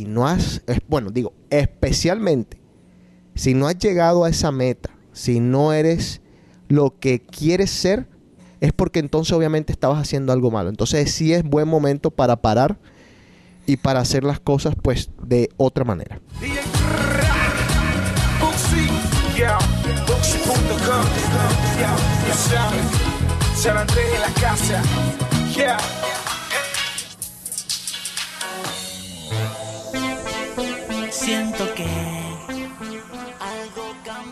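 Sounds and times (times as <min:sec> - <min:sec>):
speech: 0:00.0 - 0:02.6, 0:03.4 - 0:12.9, 0:13.6 - 0:17.2, 0:20.5 - 0:26.3
voice or vocal line over dance music: 0:16.3 - 0:27.2, 0:28.6 - 0:34.3
DJ mix of dense beat-driven dance music: 0:16.3 - 0:34.3.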